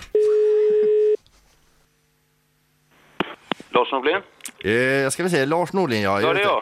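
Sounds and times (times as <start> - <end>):
telephone ringback tone over the phone line: 0.2 - 1.2
speech: 3.8 - 6.6.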